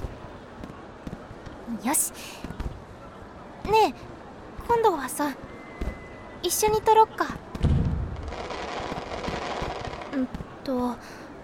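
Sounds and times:
speech: 1.7 - 2.6, 3.7 - 4.1, 4.7 - 5.5, 6.4 - 7.4, 10.2 - 11.2
low boom: 7.6 - 8.3
fireworks crackling and popping: 7.6 - 10.5.

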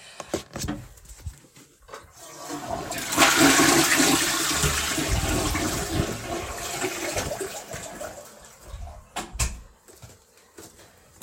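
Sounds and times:
toilet flushing: 1.9 - 9.1.

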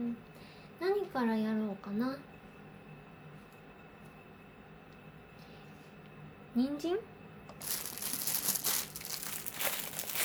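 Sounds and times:
speech: 0.0 - 2.4, 6.6 - 7.8
plastic packaging crinkling and rustling while being opened in a kitchen: 7.6 - 10.2.

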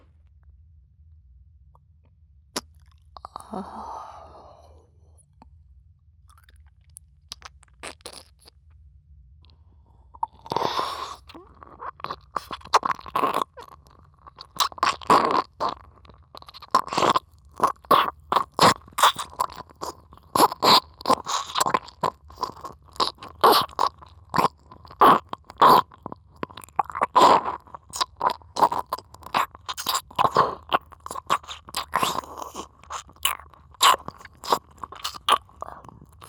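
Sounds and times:
dense sharp wet mouth clicks and slurps: 6.3 - 8.6, 10.2 - 36.2.

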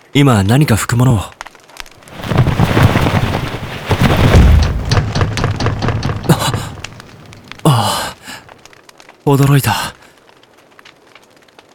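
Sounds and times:
speech: 0.1 - 1.4, 9.3 - 10.0
fireplace fire crackling: 1.8 - 11.5
stormy wind and rain: 1.9 - 11.7
knocks: 2.1 - 8.5.

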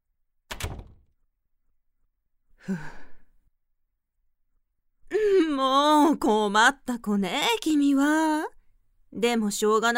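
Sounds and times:
door shutting with a solid thunk: 0.5 - 1.1
speech: 2.6 - 3.0, 5.6 - 9.9
person sighing: 2.6 - 3.4.

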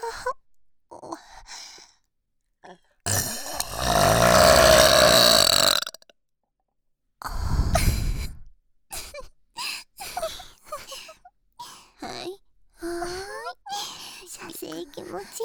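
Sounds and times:
long rumbling burp: 3.1 - 6.1.

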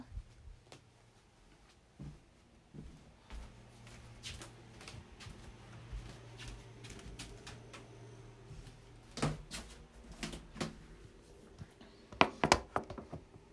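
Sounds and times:
footsteps thudding softly along a hallway floor: 0.1 - 8.0, 8.5 - 10.9
hallway floorboards creaking under footsteps: 12.2 - 13.3.

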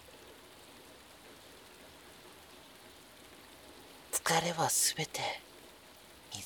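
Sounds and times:
steady rain falling: 0.0 - 6.4
speech: 4.3 - 5.5.

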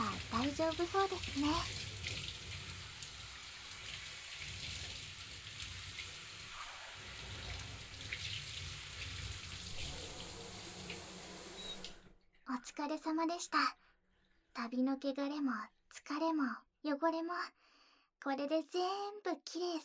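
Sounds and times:
steady running water from a shower spray: 0.0 - 12.2
speech: 0.5 - 1.8, 12.5 - 13.8, 14.6 - 17.6, 18.2 - 19.8.

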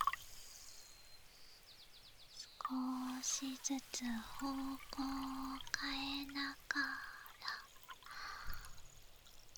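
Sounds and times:
water poured over hair during a rinse: 0.0 - 9.5
low splash: 2.6 - 9.0
speech: 2.7 - 7.1.

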